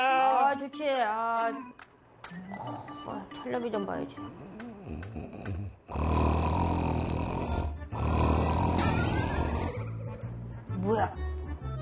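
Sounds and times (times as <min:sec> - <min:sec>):
speech: 0:00.5 - 0:06.3, 0:10.8 - 0:11.4
person snoring loudly: 0:04.3 - 0:10.0.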